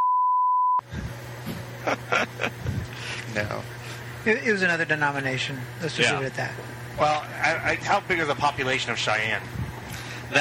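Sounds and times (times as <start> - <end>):
loud high-pitched censor bleep: 0.0 - 0.8
laughter: 1.5 - 3.3
speech: 1.8 - 2.7, 3.3 - 9.6.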